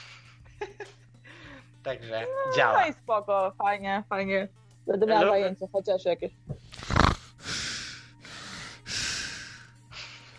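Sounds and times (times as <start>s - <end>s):
speech: 1.8s - 6.5s
snort-like puff: 6.6s - 9.5s
heavy panting breaths: 6.6s - 10.3s.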